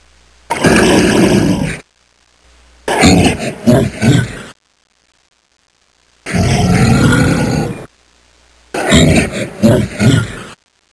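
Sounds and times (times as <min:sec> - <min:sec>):
bear giving rough deep pulsing growls: 0:00.5 - 0:01.8, 0:02.9 - 0:04.6, 0:06.3 - 0:07.9, 0:08.8 - 0:10.6.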